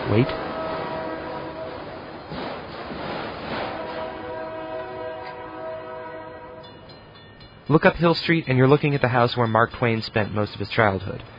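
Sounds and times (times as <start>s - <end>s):
sustained horn-like train tones: 0.0s - 2.3s, 3.5s - 6.9s
train rumbling past on railroad tracks beside a riverside path: 0.0s - 11.3s
speech: 0.1s - 0.5s, 7.7s - 11.3s.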